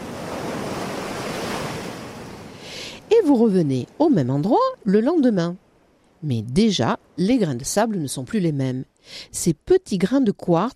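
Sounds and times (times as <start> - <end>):
Atlantic Ocean waves washing onto a white sand beach: 0.0 - 4.6
wind: 0.0 - 10.7
speech: 3.2 - 5.6, 6.2 - 10.7.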